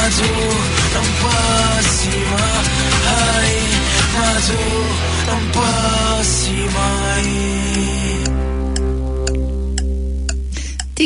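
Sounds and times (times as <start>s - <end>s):
sustained low tones: 0.0s - 11.0s
speech: 4.5s - 8.4s
clock ticking: 7.2s - 11.0s.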